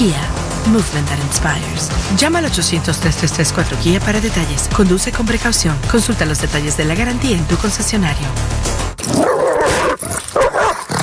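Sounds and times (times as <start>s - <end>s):
speech: 0.0s - 9.3s
dog snarling and barking while attacking a person: 9.0s - 11.0s.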